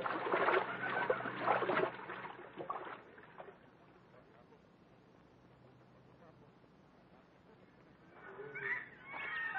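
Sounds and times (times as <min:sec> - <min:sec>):
legs sloshing and splashing in a river: 0:00.0 - 0:03.7
people wading through a river: 0:00.0 - 0:04.2.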